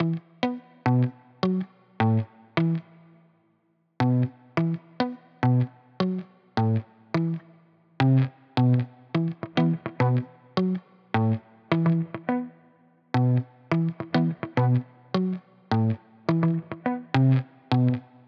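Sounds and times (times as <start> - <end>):
muted guitar loop in E minor at 105 BPM: 0.0 - 3.2, 4.0 - 18.2.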